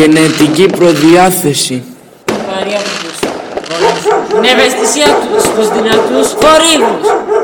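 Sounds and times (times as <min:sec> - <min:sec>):
speech: 0:00.0 - 0:01.9, 0:02.6 - 0:03.1, 0:03.8 - 0:07.4
fireworks exploding: 0:00.0 - 0:07.0.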